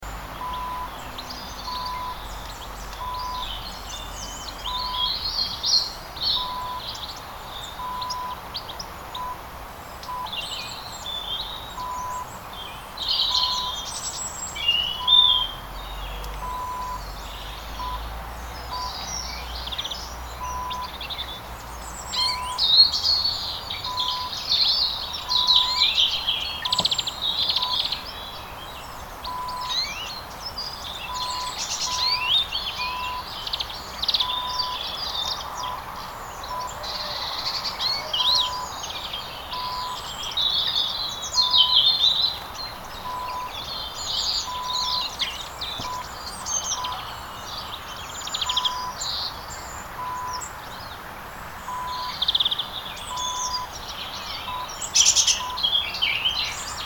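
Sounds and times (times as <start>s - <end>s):
quiet birds in the countryside in winter: 0.0s - 56.8s.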